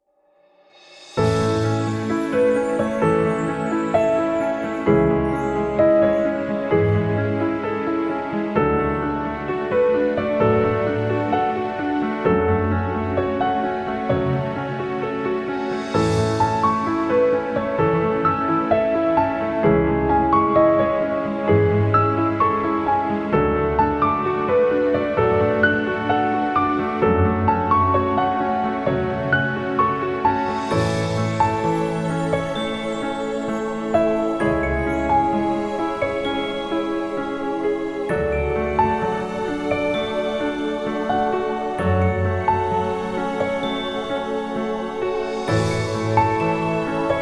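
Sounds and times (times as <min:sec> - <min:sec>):
romantic piano music: 0:00.9 - 0:47.2.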